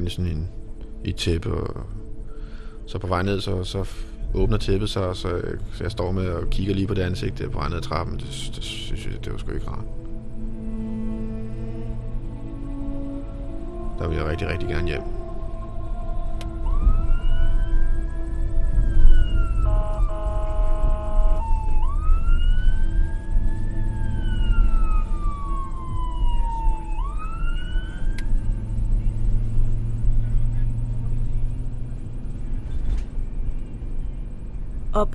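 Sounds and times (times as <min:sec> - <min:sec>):
speech: 0:00.0 - 0:02.0, 0:02.9 - 0:10.0, 0:14.0 - 0:15.2, 0:35.0 - 0:35.1
steady low rumble of engine and traffic: 0:00.0 - 0:35.1
ambulance siren wailing with two-tone burst: 0:08.8 - 0:31.9.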